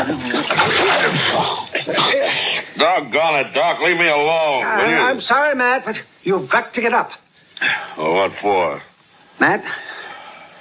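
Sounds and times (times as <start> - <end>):
water splashed over a sleeping man: 0.0 - 1.7
speech: 0.0 - 9.9.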